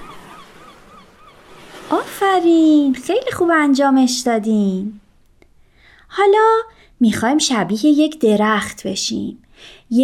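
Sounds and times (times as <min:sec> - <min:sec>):
seagulls calling: 0:00.0 - 0:02.2
steady wash of surf reaching shore: 0:00.0 - 0:03.6
speech: 0:01.9 - 0:05.0, 0:06.1 - 0:10.0.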